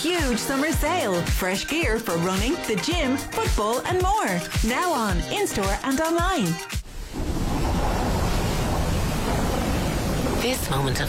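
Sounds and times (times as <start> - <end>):
speech: 0.0 - 7.2, 10.4 - 11.0
winter wind roaring across the Wicklow Mountains: 6.8 - 11.0.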